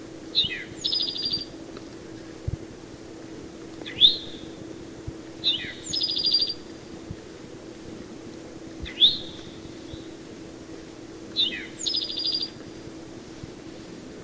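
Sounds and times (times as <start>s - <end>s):
steady low background hum: 0.0s - 14.2s
Eastern towhee calling: 0.4s - 1.6s, 5.4s - 6.7s, 8.8s - 10.2s, 11.4s - 12.6s.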